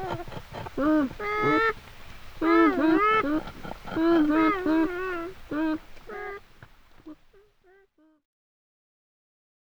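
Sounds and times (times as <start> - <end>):
beaver whining calls: 0.0 - 7.1.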